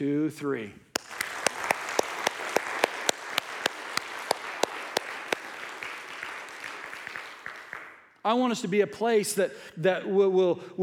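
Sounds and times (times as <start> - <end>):
speech: 0.0 - 0.9, 8.2 - 10.8
church audience applauding: 1.0 - 8.1.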